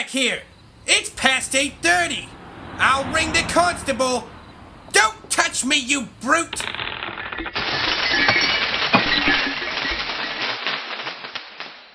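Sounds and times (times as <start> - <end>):
speech: 0.0 - 4.3, 4.9 - 7.6
loud glass shattering with tinkling shards: 6.6 - 11.6.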